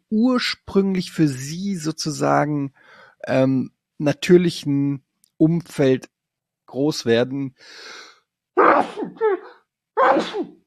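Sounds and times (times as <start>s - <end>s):
speech: 0.1s - 6.1s, 6.7s - 10.6s
person sneezing: 8.6s - 10.6s.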